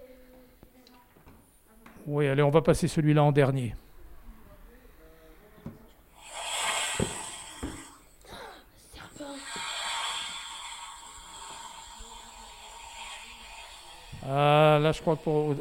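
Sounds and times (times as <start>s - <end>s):
speech: 2.0s - 3.8s, 15.0s - 15.5s
snake hissing: 6.1s - 15.5s.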